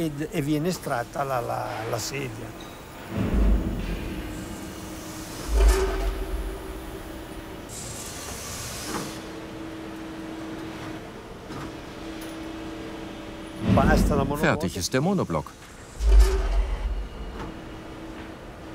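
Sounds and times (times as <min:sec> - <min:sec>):
speech: 0:00.0 - 0:03.4, 0:14.1 - 0:15.7
heavy mechanical clunks of an injection mold machine opening: 0:02.8 - 0:07.7, 0:13.5 - 0:14.6, 0:15.9 - 0:18.3
steady pneumatic hiss of an injection mold machine: 0:03.0 - 0:09.3, 0:15.6 - 0:17.7.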